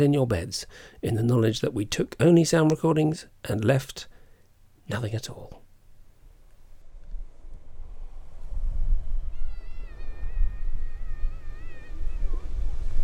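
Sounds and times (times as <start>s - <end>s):
speech: 0.0s - 4.1s, 4.9s - 5.6s
thin high wavering cry: 9.2s - 12.7s.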